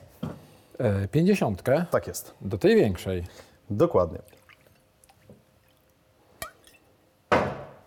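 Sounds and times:
speech: 0:00.8 - 0:04.4
liquid dripping into a small cup: 0:04.1 - 0:07.0.

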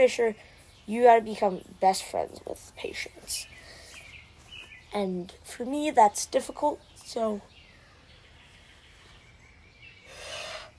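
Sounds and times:
speech: 0:00.0 - 0:03.5, 0:04.9 - 0:07.5
quiet yawn: 0:10.0 - 0:10.7.

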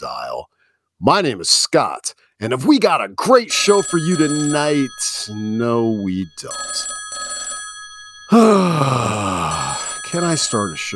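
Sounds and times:
speech: 0:01.0 - 0:06.9, 0:08.3 - 0:10.9
telephone ringing with an electronic tone: 0:03.5 - 0:10.9
groaning voice sliding downward in pitch: 0:08.3 - 0:09.9.

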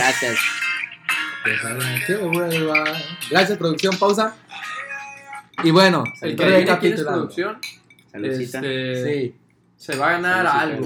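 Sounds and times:
speech: 0:00.2 - 0:00.7, 0:01.4 - 0:04.7, 0:05.6 - 0:10.8
glasses clinking in a toast: 0:05.4 - 0:06.8, 0:07.6 - 0:08.1.

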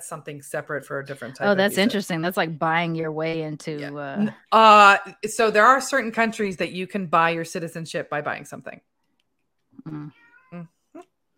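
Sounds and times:
speech: 0:00.0 - 0:08.9, 0:09.8 - 0:11.1
cat meowing: 0:09.9 - 0:10.7.

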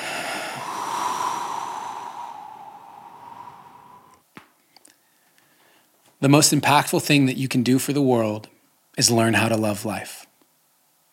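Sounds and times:
deep breath in and out during a guided breathing moment: 0:00.0 - 0:04.3
speech: 0:06.2 - 0:10.2.

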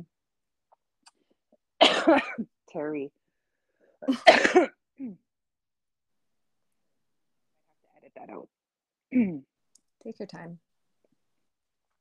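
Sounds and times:
person coughing harshly: 0:01.8 - 0:02.4, 0:04.0 - 0:05.2
speech: 0:02.0 - 0:03.2, 0:04.0 - 0:05.2, 0:08.2 - 0:08.5, 0:09.1 - 0:10.6.

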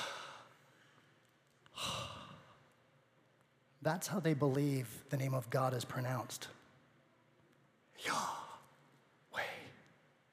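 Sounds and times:
group taking a deep breath together: 0:00.0 - 0:02.6
speech: 0:03.8 - 0:06.6.

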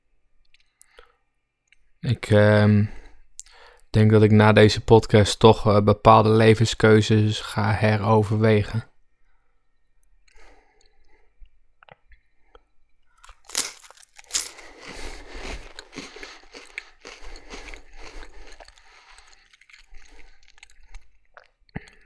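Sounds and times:
speech: 0:02.1 - 0:03.0, 0:03.9 - 0:08.9
cracker topped with liver pâté crunching: 0:13.2 - 0:21.0
wet chewing: 0:13.2 - 0:22.0.

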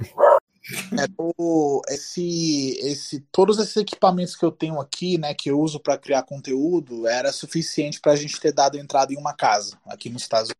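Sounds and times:
dog barking: 0:00.1 - 0:00.4
speech: 0:00.9 - 0:10.5.

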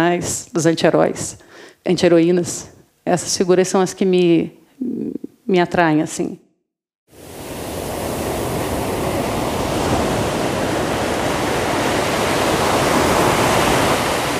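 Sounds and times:
speech: 0:00.0 - 0:06.4
ocean surf roaring: 0:07.1 - 0:14.3.

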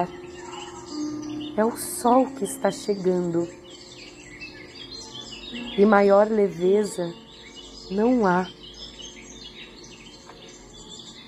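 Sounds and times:
speech: 0:00.0 - 0:00.2, 0:01.6 - 0:03.7, 0:05.8 - 0:07.2, 0:07.9 - 0:08.6
flock of many small birds flying west, chirping and twittering: 0:00.0 - 0:11.2.

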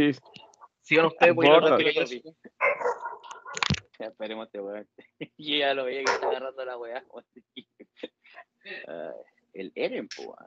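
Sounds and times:
speech: 0:00.0 - 0:00.3, 0:00.9 - 0:02.7, 0:04.0 - 0:10.4
German shepherd puppy barking and yipping: 0:02.6 - 0:03.6, 0:06.0 - 0:06.4
laughter: 0:04.8 - 0:09.2.

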